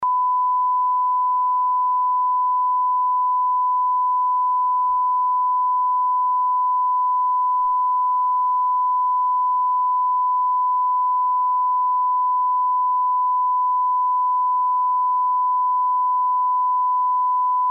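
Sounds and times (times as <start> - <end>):
1 kHz cal tone at 94 dB SPL: 0.0 - 17.6.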